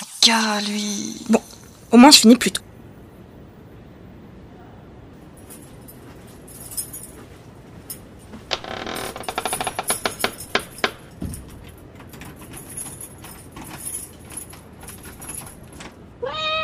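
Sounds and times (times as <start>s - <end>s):
speech: 0.3s - 2.7s
rattling jangling clicks: 5.3s - 16.1s
cat meowing: 16.2s - 16.6s.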